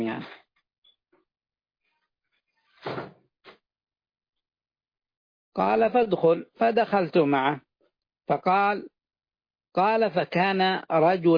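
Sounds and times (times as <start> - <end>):
speech: 0.0 - 0.4, 5.6 - 7.7, 8.3 - 8.9, 9.8 - 11.3
door whooshing scrape as it swings: 2.6 - 3.2
door being pulled shut: 2.8 - 3.2.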